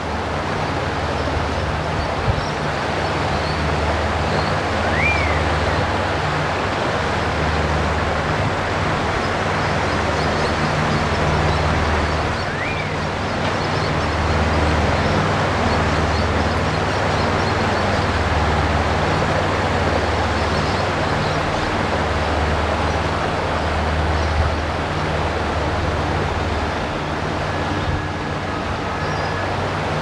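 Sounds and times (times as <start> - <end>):
creek water flowing at top of lake: 0.0 - 30.0.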